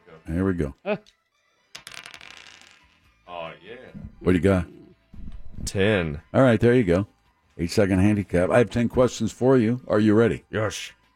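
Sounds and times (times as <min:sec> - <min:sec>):
speech: 0:00.2 - 0:01.2, 0:03.6 - 0:04.8, 0:05.6 - 0:11.0
dice clattering across a hard surface: 0:01.7 - 0:03.1.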